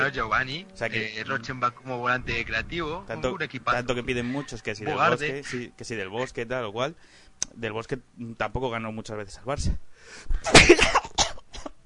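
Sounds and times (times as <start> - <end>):
speech: 0.0 - 11.1
person sneezing: 10.3 - 11.7.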